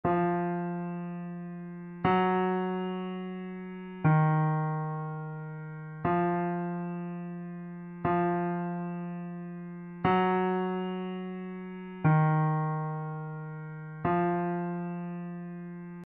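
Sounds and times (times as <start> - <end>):
Steinway piano test: 0.0 - 16.0.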